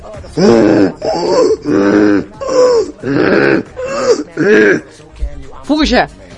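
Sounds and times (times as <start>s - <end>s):
speech: 0.3s - 2.3s, 5.9s - 6.2s
person imitating a moose call: 0.4s - 4.9s.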